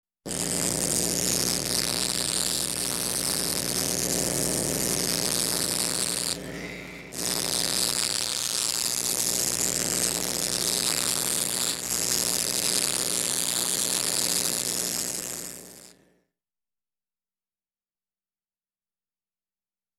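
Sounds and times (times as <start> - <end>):
welding metal: 0.3 - 15.9.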